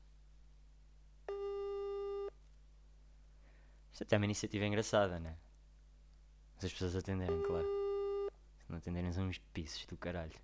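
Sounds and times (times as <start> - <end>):
faint low hum: 0.0 - 10.4
outgoing telephone call ringing tone: 1.3 - 2.3, 7.3 - 8.3
speech: 4.0 - 5.4, 6.6 - 7.8, 8.7 - 10.4.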